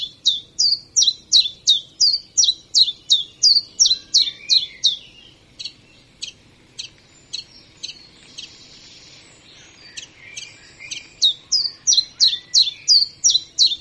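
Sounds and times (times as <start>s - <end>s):
common chiffchaff repeating chiff and chaff notes: 0.0s - 13.7s.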